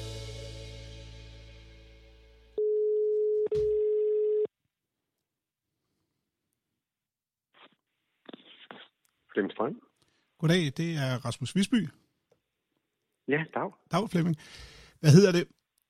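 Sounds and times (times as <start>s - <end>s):
telephone ringing tone as a call is placed: 2.6s - 4.5s
speech: 9.4s - 12.0s, 13.3s - 15.6s.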